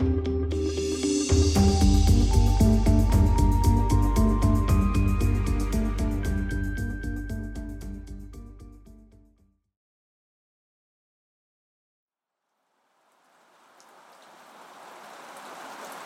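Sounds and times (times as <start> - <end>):
music: 0.0 - 9.7
steady rain: 12.6 - 16.0.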